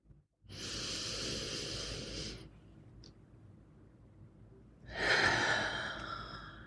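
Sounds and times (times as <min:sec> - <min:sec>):
deep breath in through the nose and out through the mouth: 0:00.5 - 0:02.6, 0:04.9 - 0:06.6.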